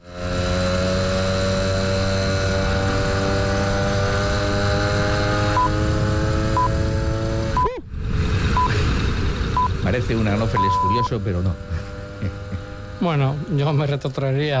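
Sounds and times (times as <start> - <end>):
small moped engine at full throttle: 0.0 - 7.6, 8.6 - 14.5
speech: 10.0 - 12.4, 13.0 - 14.5.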